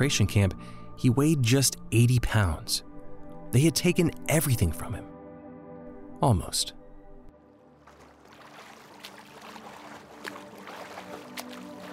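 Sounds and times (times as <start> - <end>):
speech: 0.0 - 2.9, 3.5 - 5.1, 6.2 - 6.8
sea water churning: 7.7 - 11.9.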